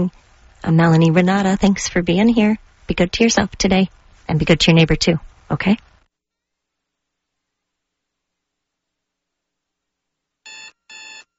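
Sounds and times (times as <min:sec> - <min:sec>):
speech: 0:00.0 - 0:05.9
electronic alarm clock ringing: 0:10.5 - 0:11.3.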